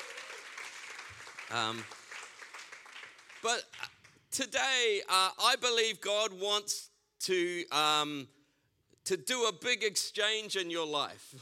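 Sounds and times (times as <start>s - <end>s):
audience applauding: 0.0s - 4.1s
speech: 1.5s - 2.0s, 3.4s - 8.4s, 9.1s - 11.3s.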